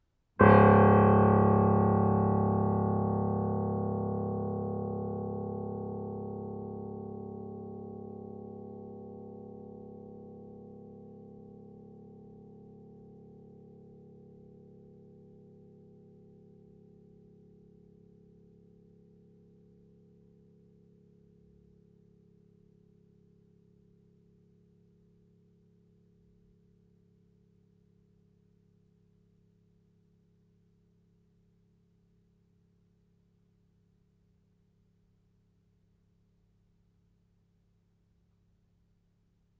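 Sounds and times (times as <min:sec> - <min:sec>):
grand piano multiphonics: 0:00.4 - 0:13.4.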